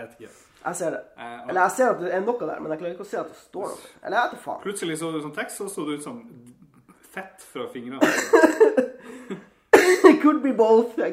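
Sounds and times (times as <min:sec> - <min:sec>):
speech: 0:00.0 - 0:11.1
laughter: 0:08.0 - 0:09.5
raspy coughing: 0:08.0 - 0:10.3.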